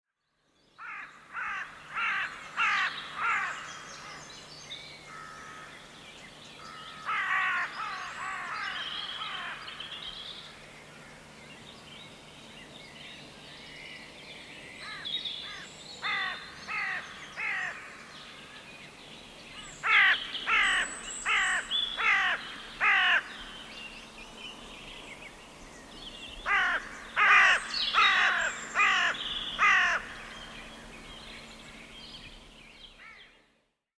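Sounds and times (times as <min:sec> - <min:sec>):
crows: 0:00.8 - 0:04.2, 0:05.1 - 0:05.8, 0:06.7 - 0:09.8, 0:14.8 - 0:17.9, 0:19.8 - 0:23.4, 0:26.5 - 0:30.3.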